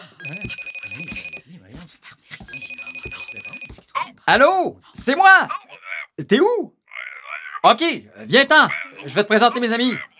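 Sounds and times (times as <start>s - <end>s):
video call ringing: 0.1s - 1.5s, 2.5s - 3.9s
speech: 4.3s - 5.6s, 6.2s - 6.8s, 7.6s - 10.1s.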